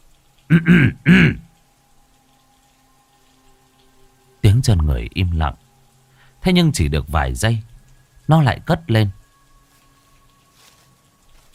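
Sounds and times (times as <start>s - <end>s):
speech: 0.5s - 1.4s, 4.7s - 5.6s, 6.4s - 7.7s, 8.3s - 9.2s
man clearing his throat: 0.5s - 1.5s.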